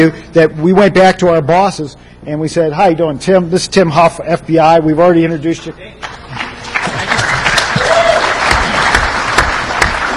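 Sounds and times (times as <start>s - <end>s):
speech: 0.0s - 6.4s
crowd applauding: 6.0s - 10.1s
sharp individual claps: 6.0s - 10.1s.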